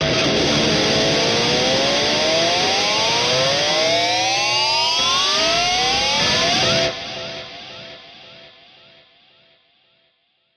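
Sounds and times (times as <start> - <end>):
electric guitar scream: 0.0 - 7.4.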